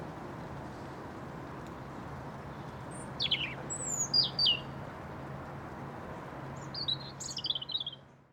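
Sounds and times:
constant low hum: 0.0 - 8.3
European robin song: 2.4 - 4.8, 6.5 - 8.3.

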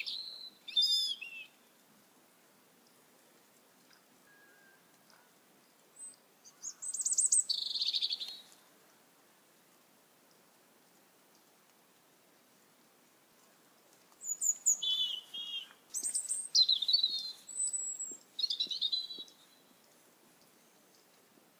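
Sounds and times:
bird singing high-pitched whistled phrases at night: 0.0 - 1.5, 6.0 - 8.4, 14.2 - 19.4.

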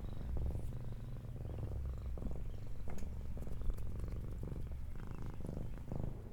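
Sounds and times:
cat purring: 0.0 - 6.3
faint soft clicks: 2.8 - 4.2.

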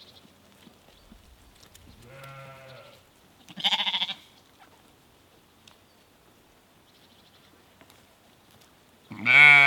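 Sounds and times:
small herd of sheep in Norway bleating: 2.0 - 4.2, 9.1 - 9.6.

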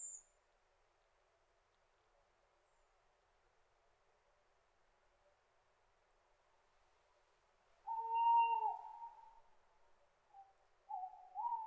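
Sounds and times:
owl hooting: 7.9 - 9.4, 10.4 - 11.6.

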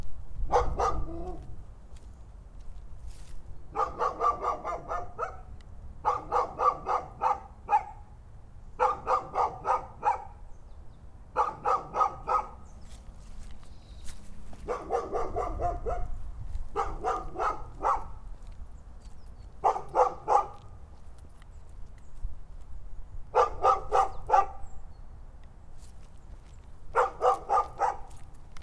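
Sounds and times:
dog barking: 0.5 - 1.5, 3.7 - 8.2, 8.8 - 10.4, 11.3 - 12.7, 14.6 - 18.2, 19.6 - 20.6, 23.3 - 24.7, 26.9 - 28.2.

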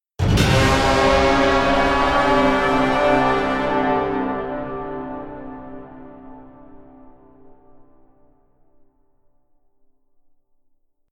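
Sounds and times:
war horn blast: 0.2 - 7.7.

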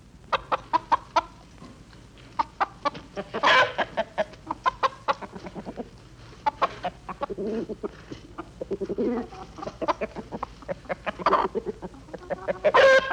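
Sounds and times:
chickens clucking: 0.3 - 13.1
drawn-out chicken squawk: 3.2 - 5.7, 6.5 - 13.1.

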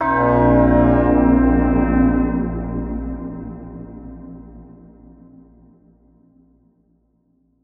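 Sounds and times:
alien horn: 0.0 - 4.5.

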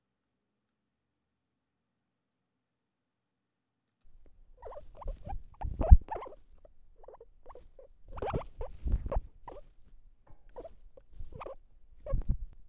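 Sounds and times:
guinea pig calling: 4.2 - 9.7, 10.5 - 12.2.

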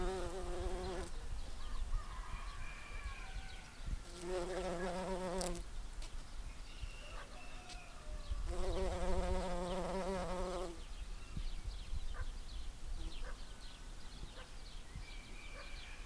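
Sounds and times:
bumblebee giving a low droning buzz: 0.0 - 1.1, 4.0 - 5.6, 8.5 - 10.8
background noise: 0.0 - 16.0.

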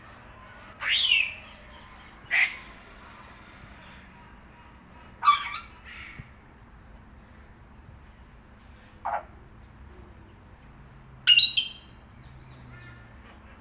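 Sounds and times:
low background hum: 0.0 - 13.6
grey parrot harsh calls: 0.8 - 2.8, 5.2 - 6.2, 9.1 - 9.3.

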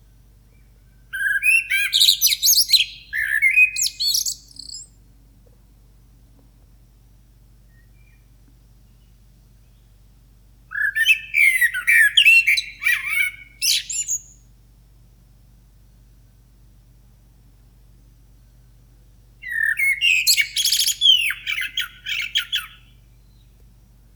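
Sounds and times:
low steady hum: 0.0 - 11.0, 12.6 - 19.6, 22.7 - 24.1
blackbird song with fluted notes and twittering in the morning: 0.4 - 5.0, 7.7 - 10.0, 10.7 - 14.4, 19.4 - 23.6.

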